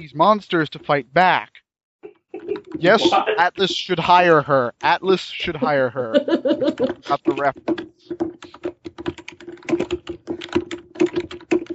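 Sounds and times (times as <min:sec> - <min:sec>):
speech: 0:00.0 - 0:01.6, 0:02.8 - 0:08.7
laughter: 0:02.4 - 0:03.9, 0:05.4 - 0:07.5
typing on a mechanical computer keyboard: 0:06.7 - 0:11.7.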